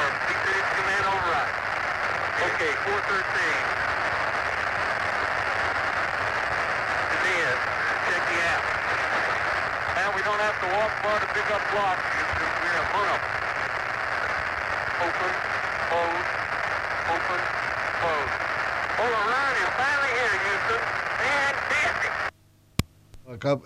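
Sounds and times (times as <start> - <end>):
radio interference on Apollo 16 lunar descent transmission: 0.0 - 22.3
speech: 2.6 - 3.8, 10.6 - 13.4, 15.0 - 16.4, 17.1 - 18.4, 19.0 - 22.2, 23.3 - 23.6.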